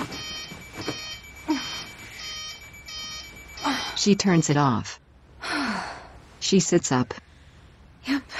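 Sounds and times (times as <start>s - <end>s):
phone alarm ringing with bright electronic tones: 0.0s - 4.5s
speech: 4.0s - 5.0s, 6.5s - 7.2s.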